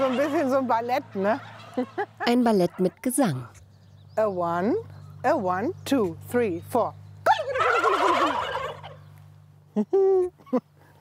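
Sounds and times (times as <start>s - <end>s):
speech: 0.0s - 3.6s, 4.2s - 7.0s, 9.8s - 10.7s
turkey toms gobbling in chorus: 0.0s - 3.6s, 7.2s - 9.2s.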